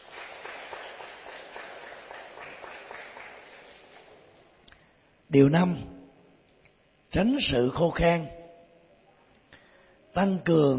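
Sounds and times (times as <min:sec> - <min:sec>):
crowd applauding: 0:00.0 - 0:04.3
speech: 0:05.3 - 0:05.9, 0:07.1 - 0:08.4, 0:10.2 - 0:10.7.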